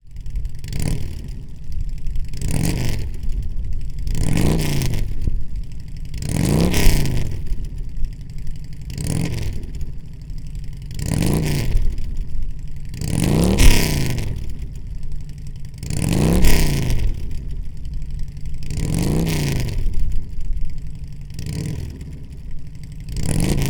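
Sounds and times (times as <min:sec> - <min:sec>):
Softail motorcycle 103 engine with 2-into-1 exhaust revving: 0:00.1 - 0:23.6.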